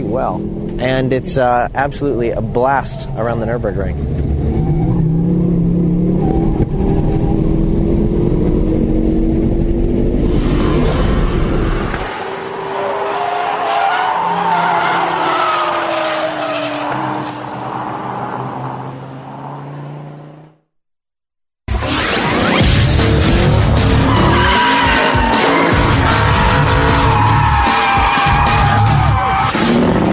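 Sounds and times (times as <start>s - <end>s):
speech: 0.0s - 4.4s
car tires squealing while drifting sideways: 0.0s - 7.8s, 10.2s - 20.0s, 23.7s - 30.1s
car engine roaring: 0.0s - 20.6s, 22.0s - 30.1s.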